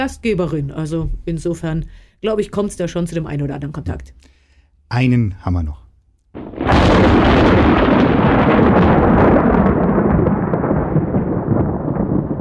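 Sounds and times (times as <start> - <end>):
speech: 0.0 - 4.3, 4.9 - 7.6
loud sustained thunder rumble: 6.4 - 12.3.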